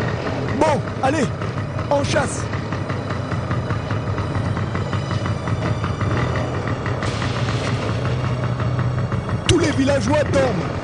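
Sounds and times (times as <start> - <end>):
old motorcycle engine idling roughly at night: 0.0 - 10.8
speech: 0.6 - 2.6, 9.8 - 10.8.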